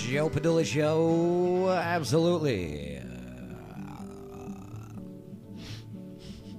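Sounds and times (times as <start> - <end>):
speech: 0.1 - 3.0
person making long low croaking burp-like sound with vocal fry: 2.8 - 5.2.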